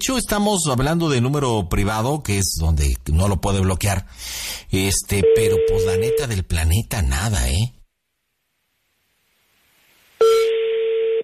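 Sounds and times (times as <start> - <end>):
speech: 0.0 - 7.8
telephone dialing tone: 10.2 - 11.2.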